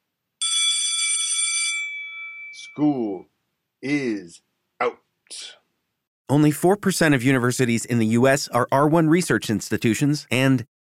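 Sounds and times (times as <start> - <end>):
single bright bell ringing: 0.4 - 3.1
speech: 2.6 - 5.6, 6.3 - 10.7.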